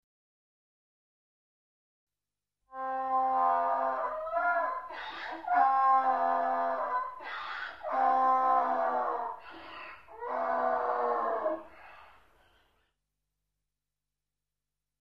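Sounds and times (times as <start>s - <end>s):
donkey braying with rasping tones and wheezy intakes: 3.0s - 11.8s.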